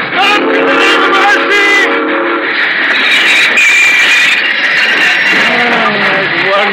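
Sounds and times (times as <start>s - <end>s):
steady train rumble: 0.0s - 6.7s
train brakes hissing: 0.4s - 6.4s
train brakes squealing as the train grinds to a halt: 2.4s - 6.1s.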